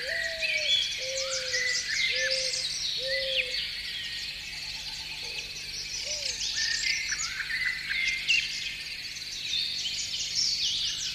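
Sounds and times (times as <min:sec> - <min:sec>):
birds chirping and twittering in the morning: 0:00.0 - 0:11.1.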